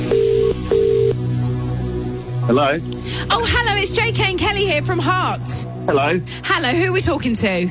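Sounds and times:
British-style outgoing phone call double-burst ring tones: 0.1s - 1.1s
speech: 2.5s - 7.7s.

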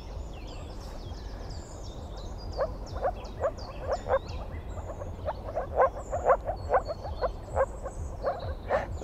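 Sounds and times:
birds twittering: 0.0s - 9.0s
moor frog calls in a marsh: 2.5s - 9.0s.

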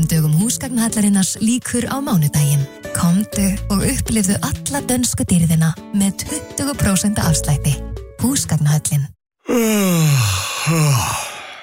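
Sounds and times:
speech: 0.0s - 11.2s
person yawning aloud with a falling moan: 9.4s - 11.6s.

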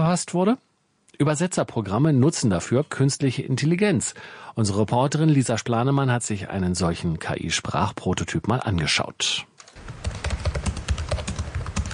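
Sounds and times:
speech: 0.1s - 10.0s
rapid typing on a laptop keyboard: 9.6s - 11.9s.

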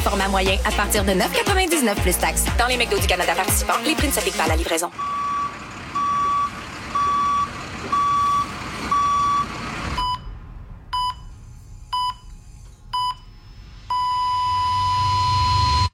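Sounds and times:
speech: 0.0s - 5.2s
construction vehicle engine rumbling: 2.1s - 15.8s
construction vehicle reversing alarm beeping on a construction site: 4.9s - 11.3s, 11.9s - 12.3s, 12.9s - 13.3s, 13.9s - 15.9s.

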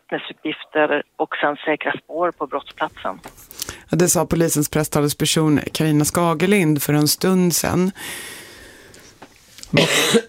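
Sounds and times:
speech: 0.1s - 8.4s, 9.7s - 10.2s
person coughing harsh rasping hacks: 9.7s - 10.2s.

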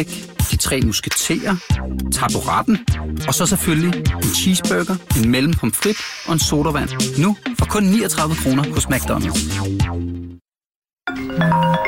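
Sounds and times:
speech: 0.0s - 10.2s, 11.1s - 11.7s
telephone short electronic ring: 11.1s - 11.8s.

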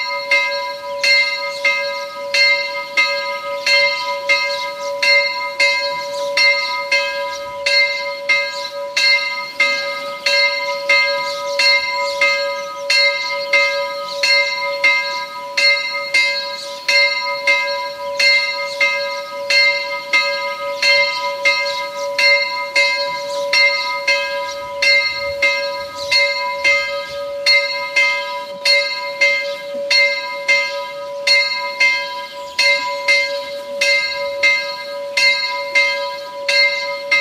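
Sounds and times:
single bell of the branch church of Mödendorf in Carinthia tolling: 0.0s - 37.1s.

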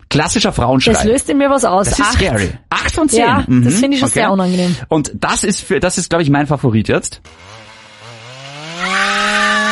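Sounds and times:
speech: 0.1s - 7.7s
chainsaw running: 7.3s - 9.7s.

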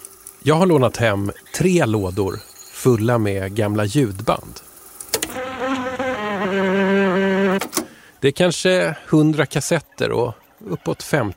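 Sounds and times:
speech: 0.4s - 4.6s, 8.2s - 11.3s
large bumblebee queen buzzing: 5.1s - 7.8s.

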